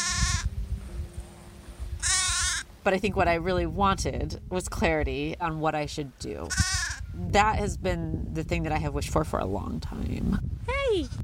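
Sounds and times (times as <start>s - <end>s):
sheep bleating: 0.0s - 0.5s, 2.0s - 2.6s, 6.5s - 7.0s
low rumbling background: 0.0s - 11.2s
speech: 2.8s - 11.2s.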